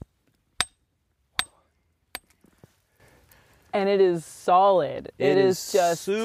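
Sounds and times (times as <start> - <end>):
rock hammer striking solid rock: 0.0 - 0.8, 1.4 - 2.3
speech: 3.7 - 6.2.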